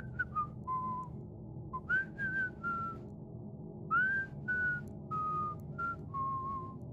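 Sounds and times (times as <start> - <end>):
person whistling a wandering tune behind a door: 0.0 - 1.0, 1.8 - 3.0, 3.9 - 6.8.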